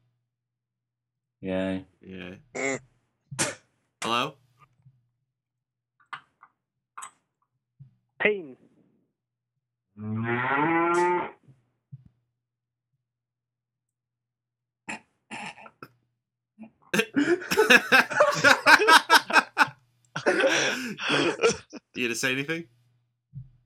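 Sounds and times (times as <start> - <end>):
speech: 1.4 - 2.9, 22.2 - 22.8
cow mooing over phone line: 10.0 - 11.4
laughter: 17.0 - 22.2.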